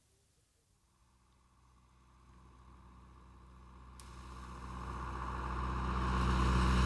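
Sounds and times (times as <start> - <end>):
tractor engine approaching along the road: 1.6 - 6.8.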